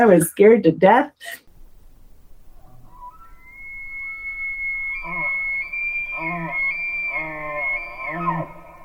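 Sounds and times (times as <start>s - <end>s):
speech: 0.0s - 1.4s
elk bugling with a high whistling bugle: 2.6s - 8.8s.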